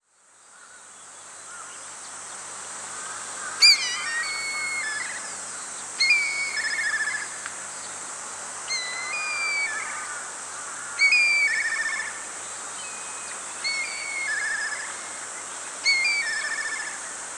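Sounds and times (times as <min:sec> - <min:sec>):
steady high hiss: 0:00.4 - 0:17.3
whistled bird calls: 0:03.6 - 0:05.3, 0:06.0 - 0:07.3, 0:08.7 - 0:10.1, 0:11.0 - 0:12.2, 0:12.8 - 0:15.2, 0:15.8 - 0:17.0.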